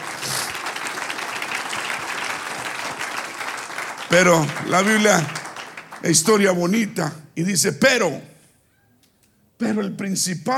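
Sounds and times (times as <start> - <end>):
audience applauding: 0.0 - 6.8
speech: 4.1 - 5.4, 6.0 - 8.3, 9.6 - 10.5.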